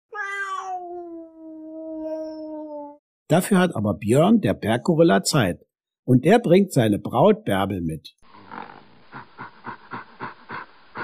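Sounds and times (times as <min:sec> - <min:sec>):
long drawn-out cat meow: 0:00.1 - 0:03.0
speech: 0:03.3 - 0:08.6.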